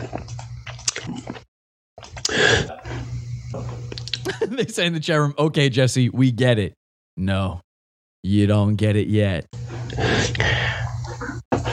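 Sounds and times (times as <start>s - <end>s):
person gulping and swallowing a drink: 0.0s - 4.3s, 10.2s - 11.7s
speech: 4.5s - 7.6s, 8.2s - 10.6s.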